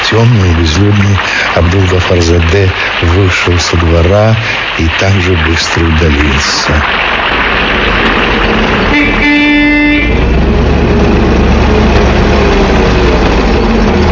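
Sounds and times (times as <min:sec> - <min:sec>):
large car engine rumbling: 0:00.0 - 0:14.1
speech: 0:00.1 - 0:08.2
large car horn blast: 0:08.8 - 0:10.3.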